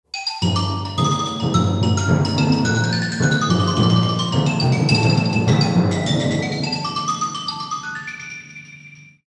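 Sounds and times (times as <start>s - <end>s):
xylophone: 0.1s - 9.2s.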